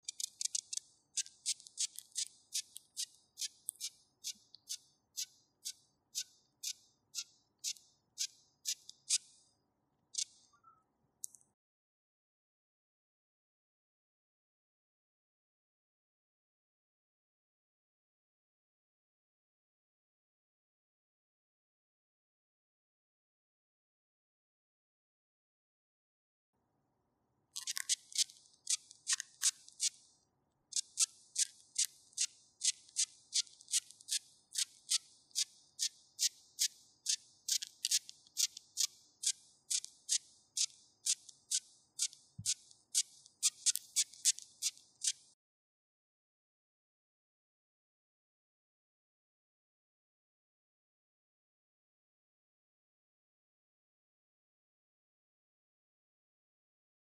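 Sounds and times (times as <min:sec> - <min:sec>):
southern pine beetle courting call: 0:00.0 - 0:09.3, 0:27.6 - 0:30.0, 0:30.7 - 0:45.2.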